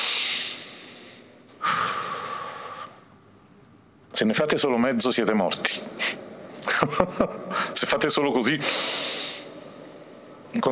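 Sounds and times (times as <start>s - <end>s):
audience taking a deep breath together: 0.0s - 3.1s, 8.6s - 9.7s
speech: 4.2s - 6.2s, 6.8s - 9.2s, 10.5s - 10.7s.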